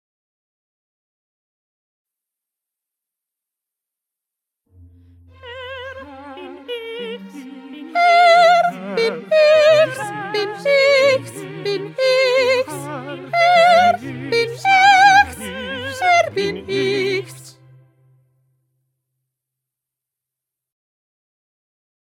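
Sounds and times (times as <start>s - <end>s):
soprano singing: 5.2s - 17.7s.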